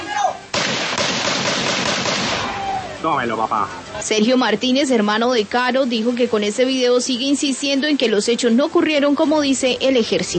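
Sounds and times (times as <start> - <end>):
rapid gunfire in a played video: 0.5 - 2.5
speech: 3.0 - 10.3.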